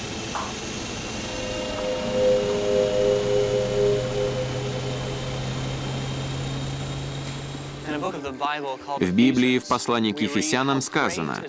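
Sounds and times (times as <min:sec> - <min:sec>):
aircraft engine drone during takeoff from runway: 0:00.0 - 0:08.2
speech: 0:08.0 - 0:11.4.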